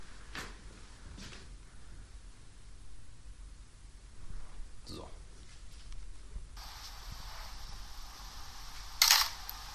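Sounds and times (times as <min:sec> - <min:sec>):
hiss: 0:00.0 - 0:09.7
Minolta film camera shutter clicking at different exposures: 0:09.0 - 0:09.6.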